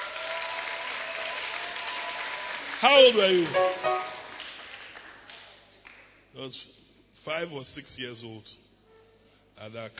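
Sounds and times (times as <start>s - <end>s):
audience clapping: 0.0s - 6.2s
speech: 2.8s - 4.0s, 6.4s - 8.6s, 9.6s - 9.9s.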